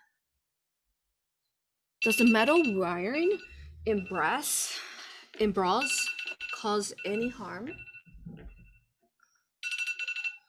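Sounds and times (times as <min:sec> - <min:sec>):
phone electronic ringtone warbling: 0:02.0 - 0:04.8, 0:05.5 - 0:08.9, 0:09.6 - 0:10.4
speech: 0:02.0 - 0:08.5.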